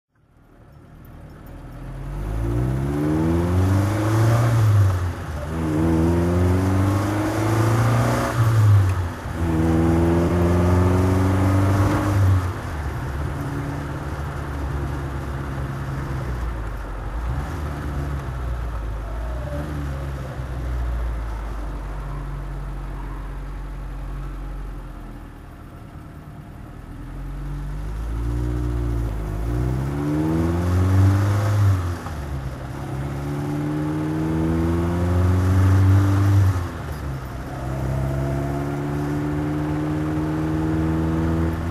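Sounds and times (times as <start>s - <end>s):
Triumph TR3 driving: 0.2s - 41.6s.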